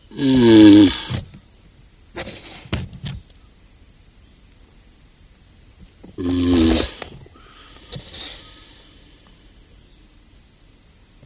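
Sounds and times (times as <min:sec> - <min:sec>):
Galapagos tortoise uttering a rough, breathy groan: 0:00.0 - 0:01.4, 0:06.2 - 0:09.6
steady background hiss: 0:00.0 - 0:11.2.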